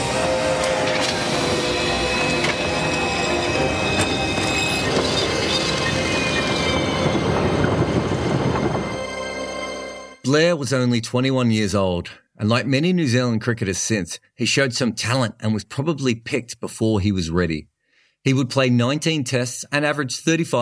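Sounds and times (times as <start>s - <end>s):
train wheels screeching and rattling on metal rails: 0.0s - 10.1s
train rumbling along rails: 0.0s - 10.2s
speech: 10.3s - 20.5s.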